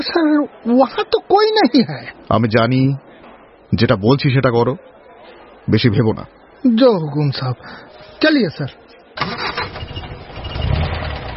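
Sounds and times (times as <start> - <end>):
speech: 0.0 - 3.0, 3.7 - 4.9, 5.6 - 9.4
hospital car engine starting and running: 9.2 - 11.3.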